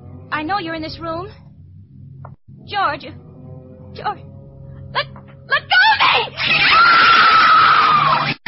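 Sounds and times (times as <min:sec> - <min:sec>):
speech: 0:00.4 - 0:01.4, 0:02.7 - 0:03.2, 0:03.9 - 0:04.3, 0:06.4 - 0:07.2
woman screaming loudly and shrilly: 0:05.0 - 0:08.3.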